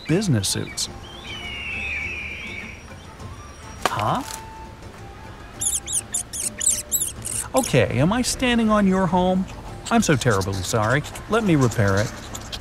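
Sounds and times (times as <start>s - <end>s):
large bird whistling call: 0.0s - 4.6s, 5.2s - 7.8s
meerkats squeaking: 0.0s - 8.1s, 9.3s - 12.6s
speech: 0.1s - 1.2s, 4.0s - 4.4s, 7.6s - 12.2s.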